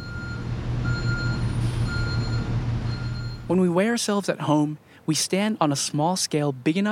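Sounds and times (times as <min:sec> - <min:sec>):
garbage truck reversing beeps at a landfill: 0:00.0 - 0:03.5
garbage truck diesel engine rumble: 0:00.0 - 0:03.6
speech: 0:03.5 - 0:06.8.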